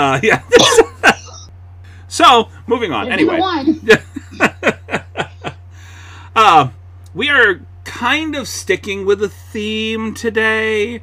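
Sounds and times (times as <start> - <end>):
speech: 0.0 - 0.9, 2.1 - 4.0, 6.4 - 11.0
laughter: 0.0 - 1.5, 3.1 - 5.6
person coughing: 0.5 - 1.4.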